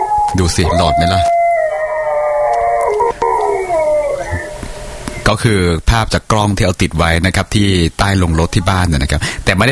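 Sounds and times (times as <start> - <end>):
several dogs howling: 0.0 - 5.2
speech: 0.3 - 1.4, 5.3 - 9.7.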